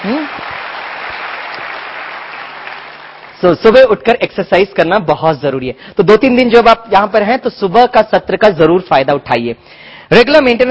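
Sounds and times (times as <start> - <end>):
audience applause for mothers: 0.0 - 3.4
speech: 3.4 - 10.7.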